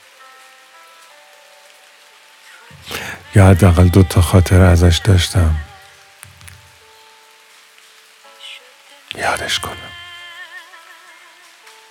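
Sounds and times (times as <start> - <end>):
steady rain: 0.0 - 11.8
speech: 2.8 - 5.7.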